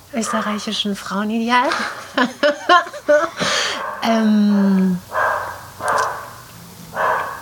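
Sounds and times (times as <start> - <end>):
speech: 0.1 - 5.2
household dog barking: 0.2 - 0.7, 3.7 - 4.2, 5.1 - 7.4
laughter: 1.6 - 3.8.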